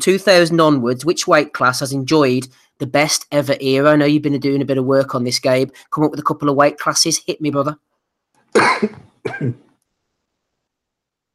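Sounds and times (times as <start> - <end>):
speech: 0.0 - 7.9, 8.5 - 9.6
harsh coughs during a coughing attack: 8.6 - 9.7
rough throat-clearing rasp: 8.6 - 9.7.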